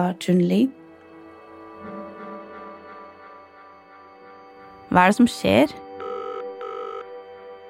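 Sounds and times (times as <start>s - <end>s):
speech: 0.0s - 0.8s, 4.9s - 5.8s
electronic ringback tones of an outgoing phone call: 6.0s - 7.2s.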